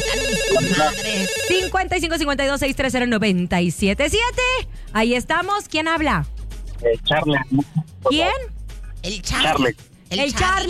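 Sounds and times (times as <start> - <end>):
telephone ringing with an electronic melodic ringtone: 0.0 - 1.8
speech: 0.5 - 10.6.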